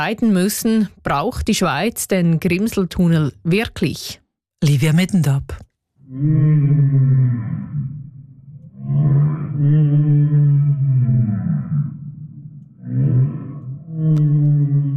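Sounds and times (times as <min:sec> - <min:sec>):
speech: 0:00.0 - 0:07.9, 0:08.9 - 0:11.6, 0:14.0 - 0:14.9
long moaning whale calls: 0:06.1 - 0:14.9.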